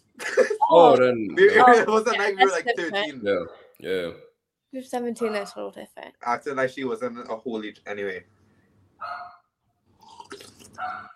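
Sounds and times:
speech: 0:00.7 - 0:08.4
dog barking: 0:03.4 - 0:03.8, 0:05.2 - 0:05.6, 0:09.0 - 0:09.5, 0:10.8 - 0:11.1.

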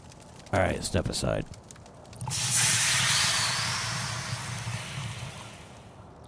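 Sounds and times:
embers sizzling with crackles and pops: 0:00.0 - 0:06.0
speech: 0:00.5 - 0:01.6
liquid stream hissing as it extinguishes fire: 0:02.1 - 0:06.0.

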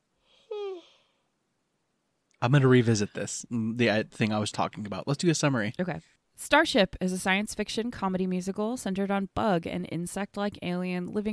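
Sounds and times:
person yawning with a voiced groan: 0:00.4 - 0:01.1
speech: 0:02.4 - 0:11.3.

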